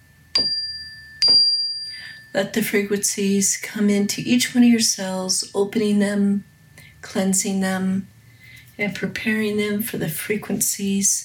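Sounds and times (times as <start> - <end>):
meditation chime struck and ringing: 0.0 - 2.6
speech: 2.3 - 8.1, 8.8 - 11.2.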